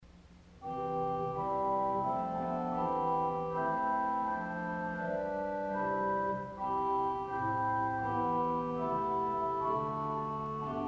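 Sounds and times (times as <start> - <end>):
Quintaton 16 foot pipe organ stop: 0.6 - 10.8.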